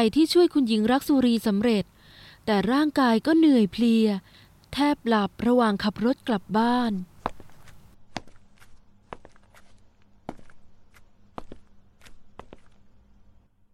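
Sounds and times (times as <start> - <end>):
speech: 0.0 - 7.1
slow heavy footsteps climbing a staircase: 7.2 - 12.8.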